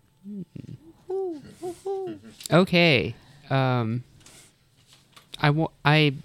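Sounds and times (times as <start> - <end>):
person imitating owl hoots: 0.2 - 2.5
speech: 0.2 - 4.1, 5.4 - 6.2.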